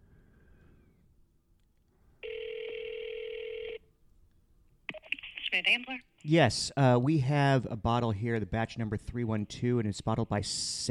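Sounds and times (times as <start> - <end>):
ringback tone on an outgoing phone call from a phone speaker: 2.2 - 3.8
speech: 5.6 - 10.8.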